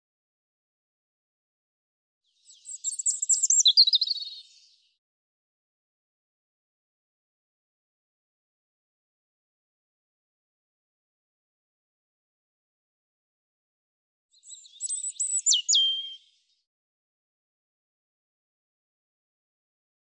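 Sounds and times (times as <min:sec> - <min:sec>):
European robin song: 0:02.3 - 0:04.9, 0:14.3 - 0:16.6.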